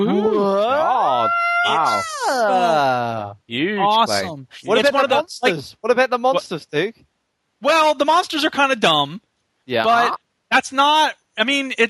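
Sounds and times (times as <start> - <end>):
dog howling: 0.0 - 2.8
speech: 1.7 - 11.8.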